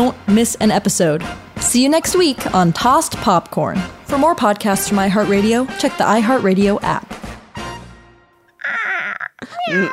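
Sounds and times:
speech: 0.0 - 7.1, 9.4 - 9.9
person imitating a cat's meow: 8.6 - 9.9
laughter: 9.3 - 9.9.

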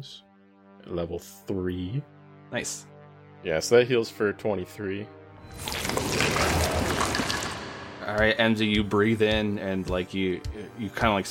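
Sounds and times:
speech: 0.0 - 7.2, 8.0 - 11.2
stream water flowing: 5.5 - 8.0.

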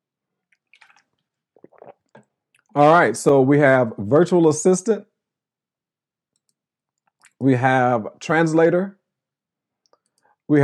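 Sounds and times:
swallowing gulps of water: 0.4 - 2.7
slurping a sip of water: 0.5 - 2.7
speech: 2.8 - 5.1, 7.4 - 9.0, 10.5 - 10.6.

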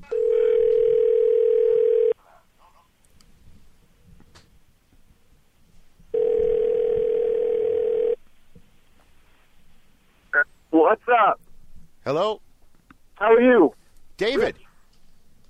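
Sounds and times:
telephone line ring tones as a phone call is placed: 0.0 - 2.2, 6.1 - 8.2
speech: 12.1 - 12.4, 13.2 - 14.6.

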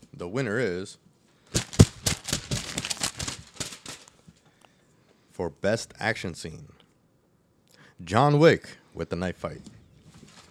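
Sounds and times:
speech: 0.2 - 1.1, 5.4 - 6.8, 8.0 - 9.8
paper envelope rustling as it is handled and opened: 1.6 - 4.2, 10.1 - 10.4.

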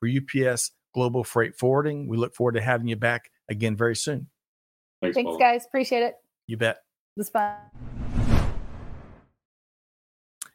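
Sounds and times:
speech: 0.0 - 4.3, 5.0 - 7.9
broad whoosh transition sound effect: 7.8 - 9.2.

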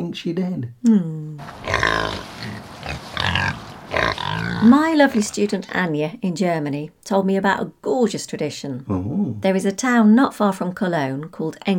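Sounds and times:
speech: 0.1 - 2.3, 4.6 - 11.7
pig grunting and snorting: 1.4 - 5.8.

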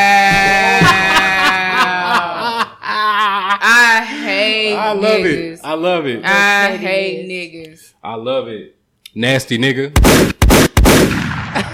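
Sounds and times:
laughter: 0.2 - 4.4, 11.6 - 11.7
speech: 5.0 - 10.3
booming echo of gunshot: 10.0 - 11.7
gunshots: 10.0 - 11.7.

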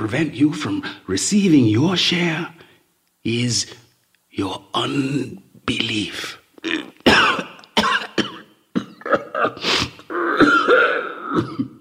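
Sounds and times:
speech: 0.0 - 2.6, 3.2 - 3.8, 4.4 - 6.9
person coughing hard with raspy throat-clearing: 6.6 - 11.7.

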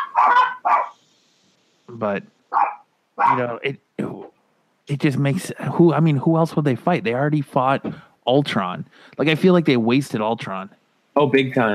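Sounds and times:
puppies barking: 0.0 - 1.0, 2.5 - 3.4
speech: 2.0 - 2.4, 3.2 - 3.8, 4.9 - 11.7.

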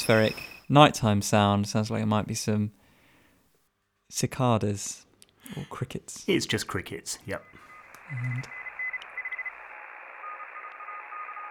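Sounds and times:
faint electronic tones and brief beeps: 0.0 - 0.7, 7.2 - 11.4
speech: 0.0 - 2.8, 4.1 - 8.6
radio static hiss: 7.3 - 11.4.

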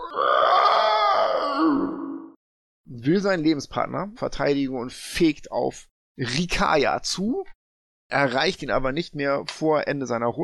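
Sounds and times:
person imitating an owlbear's harsh scream: 0.0 - 2.3
speech: 3.0 - 10.4.

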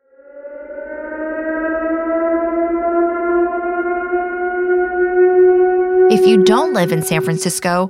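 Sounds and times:
outdoor emergency warning siren wailing: 0.0 - 7.8
speech: 6.1 - 7.8.

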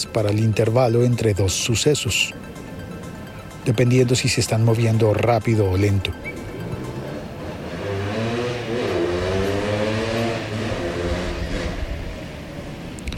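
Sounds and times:
speech: 0.1 - 2.6, 3.6 - 6.4
motorcycle engine revving past: 6.7 - 12.2.

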